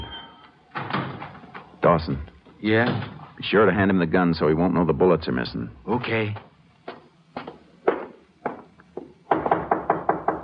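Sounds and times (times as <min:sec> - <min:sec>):
speech: 0:01.9 - 0:06.5
man knocking on a door: 0:07.4 - 0:10.4.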